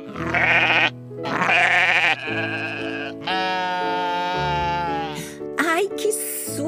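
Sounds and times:
billy goat bleating: 0:00.0 - 0:05.3.

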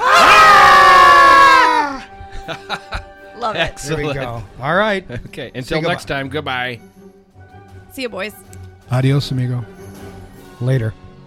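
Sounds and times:
group of people screaming together at a camera: 0:00.0 - 0:02.1
laughter: 0:02.0 - 0:04.5
speech: 0:03.4 - 0:07.0, 0:07.9 - 0:09.8, 0:10.6 - 0:11.0.

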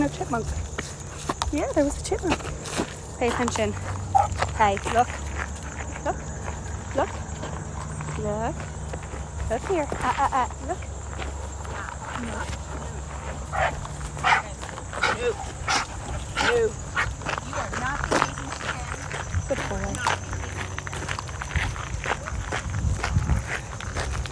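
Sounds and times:
footsteps crunching outdoors on a walk: 0:00.0 - 0:24.3
speech: 0:00.1 - 0:00.8, 0:01.5 - 0:05.2, 0:06.0 - 0:06.3, 0:07.0 - 0:07.2, 0:08.2 - 0:08.8, 0:09.5 - 0:10.9, 0:16.5 - 0:16.8
dog barking and yipping: 0:04.0 - 0:04.5, 0:13.5 - 0:17.2.

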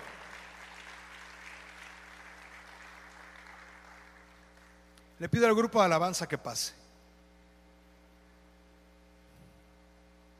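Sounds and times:
audience applauding: 0:00.0 - 0:04.8
low steady hum: 0:00.0 - 0:10.3
speech: 0:05.2 - 0:06.8.

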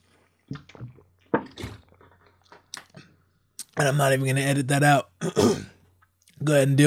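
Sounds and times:
person sipping water: 0:00.0 - 0:03.7
speech: 0:03.8 - 0:05.7, 0:06.4 - 0:06.8.

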